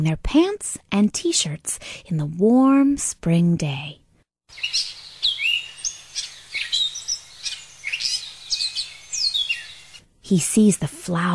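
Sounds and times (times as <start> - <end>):
speech: 0.0 - 5.0, 10.3 - 11.3
birds chirping and twittering on a warm spring day: 4.5 - 10.1.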